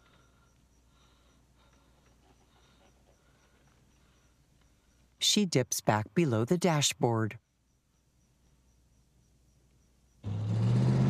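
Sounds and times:
speech: 5.3 - 7.5
car driving and turning past a shopping center: 10.2 - 11.0.

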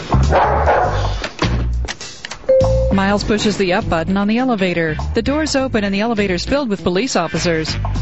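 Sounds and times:
police dog barking inside a building: 0.3 - 1.1
speech: 3.0 - 7.9.

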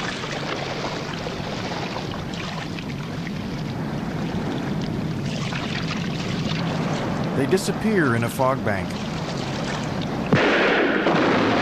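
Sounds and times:
oars rowing a boat through water: 0.0 - 10.4
speech: 7.4 - 9.1
ship's gun booming: 10.3 - 11.6.

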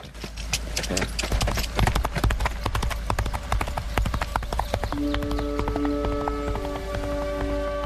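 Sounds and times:
horse hooves galloping down a road: 0.0 - 7.8.

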